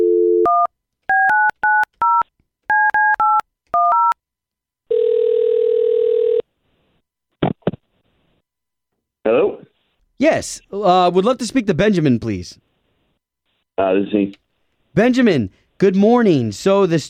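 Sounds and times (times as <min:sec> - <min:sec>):
long steady telephone tone: 0:00.0 - 0:01.4, 0:04.9 - 0:06.5
telephone keypad dialing tones: 0:00.0 - 0:04.2
speech: 0:10.2 - 0:12.6, 0:13.8 - 0:14.4, 0:15.0 - 0:17.0.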